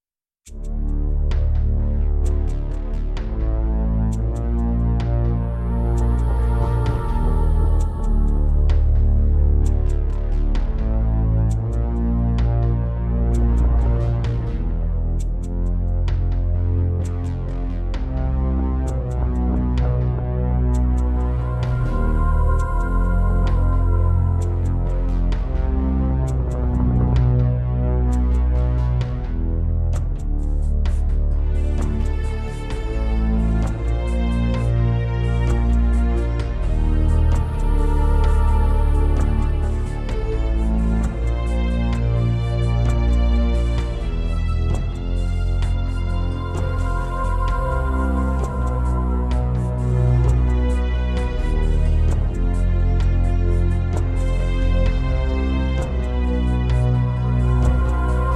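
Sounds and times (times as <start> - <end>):
Roland JV-1080: 0.4 - 58.3.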